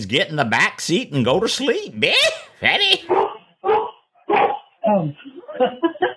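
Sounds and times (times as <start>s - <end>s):
speech: 0.0s - 3.3s, 4.9s - 6.0s
dog barking: 3.1s - 4.7s.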